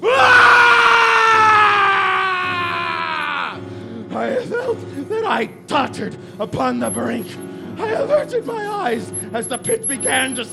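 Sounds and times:
long loud human scream of despair: 0:00.0 - 0:03.6
speech: 0:05.4 - 0:10.5.

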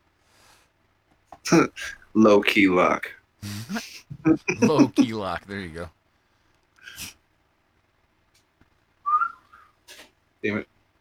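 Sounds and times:
speech: 0:01.5 - 0:06.0, 0:10.4 - 0:10.7
short airy burst of breath: 0:03.4 - 0:03.8
laughter: 0:03.4 - 0:05.9.

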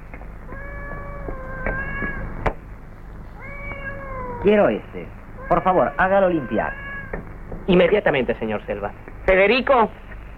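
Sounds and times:
several kittens meowing: 0:00.5 - 0:02.5, 0:03.4 - 0:07.3
speech: 0:04.4 - 0:06.8, 0:07.7 - 0:10.0.

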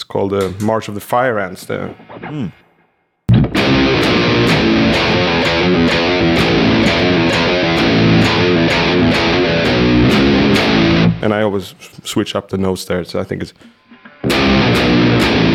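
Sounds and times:
speech: 0:00.1 - 0:02.6, 0:11.2 - 0:14.6
heavily distorted electric guitar riff with hammer-ons: 0:03.3 - 0:11.2, 0:13.6 - 0:15.5.

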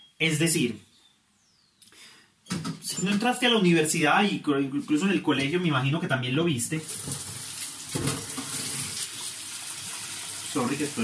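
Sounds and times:
speech: 0:00.2 - 0:00.9, 0:02.5 - 0:07.3, 0:10.6 - 0:11.0
tap water running into a rice pot being rinsed during cooking: 0:06.8 - 0:11.0.

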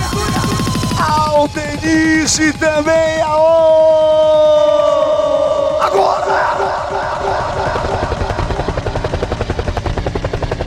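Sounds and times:
helicopter sound effect with rotor thumping at a party: 0:00.0 - 0:05.3, 0:05.9 - 0:10.6
speech: 0:01.4 - 0:04.7
people shouting at a party: 0:04.5 - 0:09.1.

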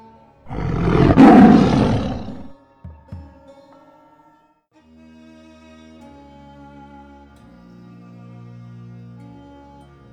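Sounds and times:
tigress roaring: 0:00.5 - 0:02.5.

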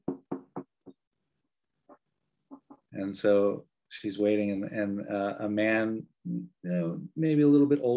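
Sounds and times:
knuckles rapping on a wooden door, performed live as a sound effect: 0:00.0 - 0:00.9
speech: 0:03.0 - 0:07.9.

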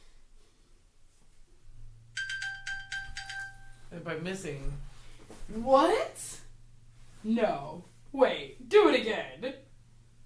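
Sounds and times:
low steady hum: 0:00.0 - 0:10.2
mobile phone ringtone electronic beeping melody: 0:02.2 - 0:03.9
speech: 0:04.0 - 0:04.9, 0:05.5 - 0:06.4, 0:07.2 - 0:09.6.

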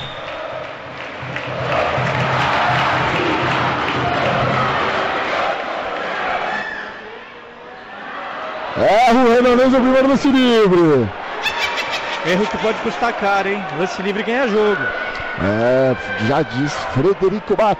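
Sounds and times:
basketball fans chanting in an arena: 0:00.0 - 0:08.8
speech: 0:09.4 - 0:11.2, 0:12.2 - 0:17.7
laughter: 0:11.4 - 0:13.0.

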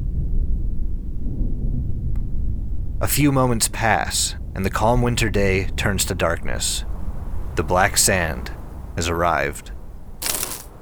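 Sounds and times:
deep continuous rumble of thunder in a storm: 0:00.0 - 0:09.0
speech: 0:03.0 - 0:06.9, 0:07.6 - 0:09.7
brief sharp crackle: 0:10.2 - 0:10.7.

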